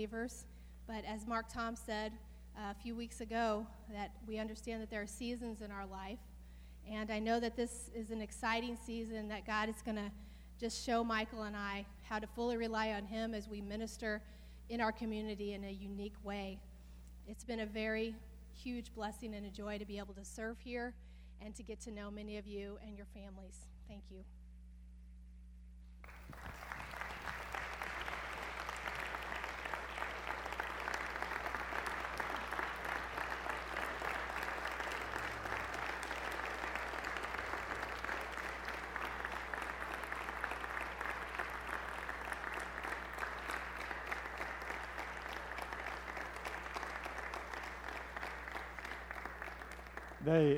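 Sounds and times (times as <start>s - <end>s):
speech: 0.0s - 16.7s, 17.3s - 24.4s, 50.3s - 50.5s
large audience applauding at a service: 26.1s - 50.5s.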